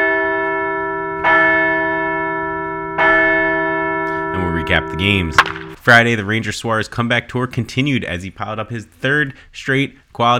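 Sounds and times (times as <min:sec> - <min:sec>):
large bell tolling: 0:00.0 - 0:05.8
speech: 0:04.7 - 0:10.3.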